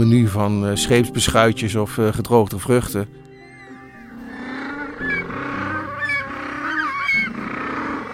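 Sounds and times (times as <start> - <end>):
speech: 0.0 - 3.3
several penguins braying in a honking chorus: 3.4 - 8.1.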